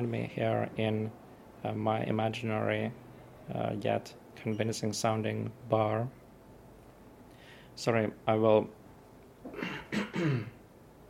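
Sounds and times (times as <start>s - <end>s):
speech: 0.0s - 6.2s, 7.8s - 8.8s, 9.4s - 10.6s
person clearing throat: 9.5s - 10.6s.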